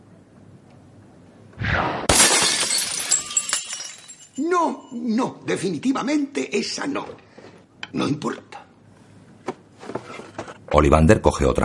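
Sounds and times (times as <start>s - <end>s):
glass vase shattering: 2.1s - 5.0s
speech: 4.4s - 7.3s, 7.9s - 8.6s, 10.8s - 11.6s.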